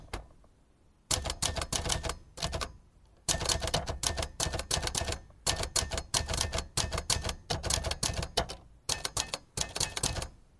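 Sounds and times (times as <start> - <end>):
vintage typewriters clacking: 1.1 - 2.7, 3.3 - 10.4.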